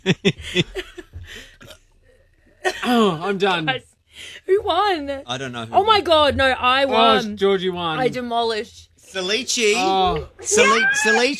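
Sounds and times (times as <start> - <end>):
speech: 0.0 - 1.4, 2.9 - 3.9, 4.5 - 11.3
person burping close to the microphone: 2.7 - 3.2.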